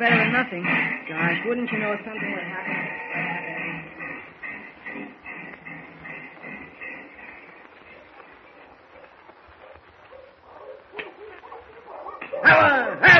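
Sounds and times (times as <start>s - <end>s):
speech: 0.0s - 3.9s
sled dogs running: 0.0s - 13.1s.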